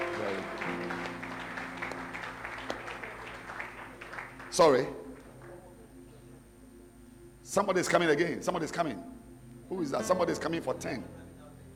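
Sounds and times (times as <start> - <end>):
people clapping hands at a church gathering: 0.0 - 5.9
speech: 4.6 - 5.0, 7.6 - 11.2.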